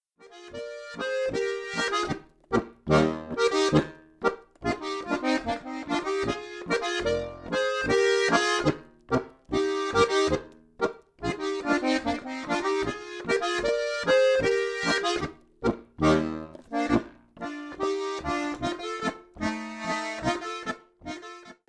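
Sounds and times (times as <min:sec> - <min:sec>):
Boarischer folk dance music: 0:00.3 - 0:21.6.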